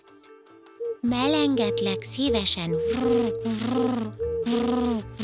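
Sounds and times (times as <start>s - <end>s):
speech: 1.1s - 5.2s
human voice imitating a dove cooing: 1.2s - 5.2s.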